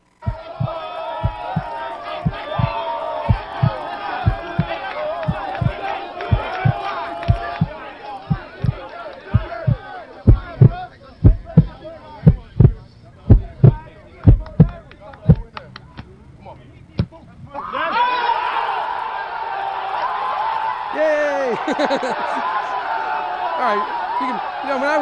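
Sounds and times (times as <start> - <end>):
loud crowd roar and cheering: 0.0 - 14.8, 17.5 - 25.0
steady thudding heartbeat in deep paired beats: 0.2 - 15.5
laughter: 21.3 - 22.9.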